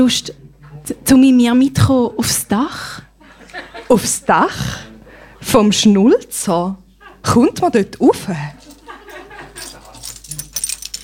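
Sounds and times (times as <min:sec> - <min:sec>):
speech: 0:00.0 - 0:03.0, 0:03.9 - 0:08.6
laughter: 0:03.2 - 0:04.8, 0:06.9 - 0:07.5, 0:08.5 - 0:11.0
bunch of keys jingling: 0:08.6 - 0:11.0.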